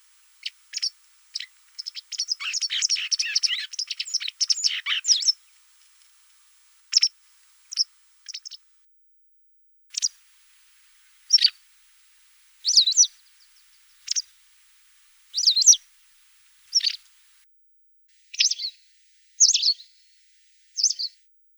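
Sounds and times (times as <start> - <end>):
White wagtail chirping, Motacilla alba: 0.0 - 8.7, 9.9 - 10.2, 10.9 - 11.7, 12.4 - 15.9, 16.6 - 17.3, 18.3 - 18.8, 19.4 - 20.0, 20.8 - 21.2.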